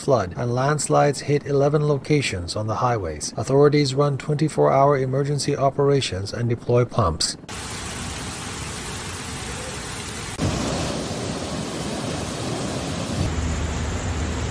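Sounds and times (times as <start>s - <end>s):
speech: 0.0s - 7.8s
heavy torrential rain: 7.5s - 14.5s.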